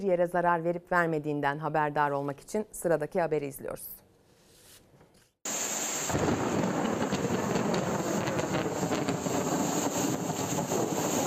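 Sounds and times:
speech: 0:00.0 - 0:04.0
heavy rainstorm downpour: 0:05.5 - 0:11.2.

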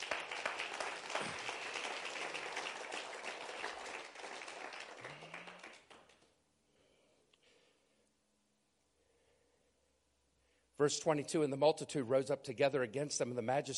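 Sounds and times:
audience applauding: 0:00.0 - 0:06.3
speech: 0:10.8 - 0:13.7.

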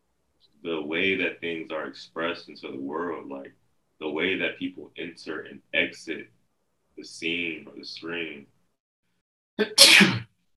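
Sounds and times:
speech: 0:00.5 - 0:06.4, 0:07.0 - 0:08.5, 0:09.6 - 0:10.3
person sneezing: 0:09.6 - 0:10.3.

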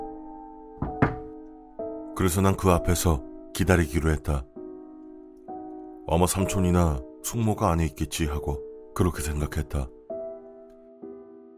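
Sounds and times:
dull knocks on a bathroom door: 0:00.8 - 0:01.4
speech: 0:02.2 - 0:04.5, 0:06.1 - 0:10.0.

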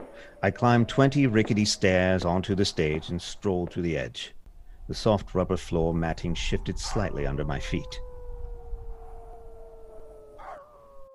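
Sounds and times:
dogs howling mournfully: 0:00.0 - 0:02.1, 0:06.2 - 0:11.1
speech: 0:00.2 - 0:08.1.

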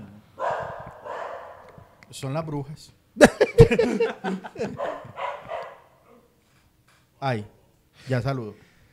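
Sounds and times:
dogs barking in howling bursts: 0:00.4 - 0:02.0, 0:03.7 - 0:06.3
speech: 0:02.1 - 0:05.0, 0:07.2 - 0:08.7
laughter: 0:03.2 - 0:05.1.

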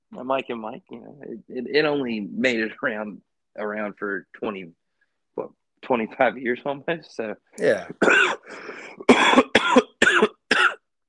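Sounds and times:
speech: 0:00.1 - 0:04.8, 0:05.4 - 0:09.5
person coughing: 0:08.0 - 0:10.9.

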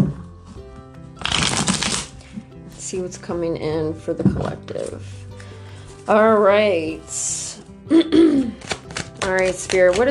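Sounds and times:
deck of cards shuffling: 0:01.2 - 0:02.4, 0:08.4 - 0:10.0
speech: 0:02.9 - 0:05.2, 0:06.1 - 0:07.4, 0:09.3 - 0:10.0.

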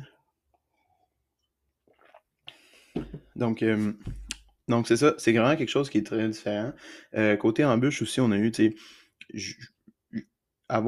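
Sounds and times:
person taking a small sip of water: 0:01.4 - 0:03.2
speech: 0:03.4 - 0:10.8.

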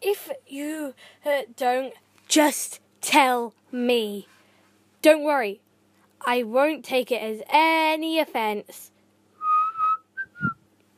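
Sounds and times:
speech: 0:00.1 - 0:04.4, 0:05.0 - 0:05.6, 0:06.2 - 0:08.9
person whistling: 0:09.4 - 0:10.6.

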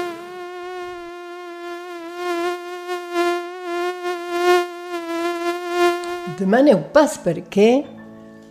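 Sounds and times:
flies and mosquitoes buzzing: 0:00.0 - 0:06.9
speech: 0:06.4 - 0:08.0.

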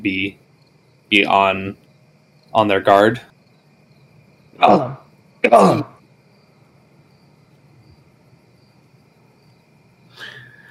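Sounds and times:
speech: 0:00.0 - 0:00.4, 0:01.1 - 0:01.8, 0:02.5 - 0:03.3, 0:04.6 - 0:05.9
voice imitating a creature's throaty cough: 0:04.6 - 0:06.0.

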